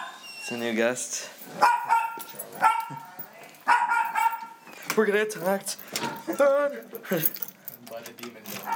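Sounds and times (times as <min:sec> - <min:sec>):
speech: 0:00.5 - 0:01.7, 0:05.0 - 0:07.5
keys jangling and clinking: 0:01.5 - 0:04.5, 0:05.4 - 0:08.7.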